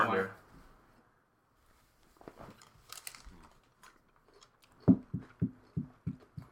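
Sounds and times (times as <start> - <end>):
chewing on Parmesan garlic chicken wings: 2.5 - 6.4.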